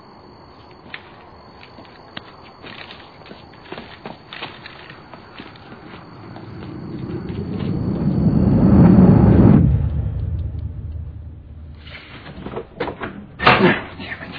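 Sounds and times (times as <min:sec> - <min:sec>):
low rumbling swell: 0:05.8 - 0:12.4.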